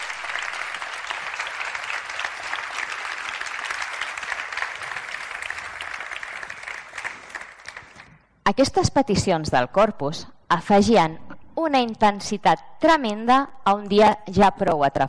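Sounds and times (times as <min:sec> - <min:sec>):
audience applause: 0:00.0 - 0:08.2
speech: 0:08.5 - 0:15.0.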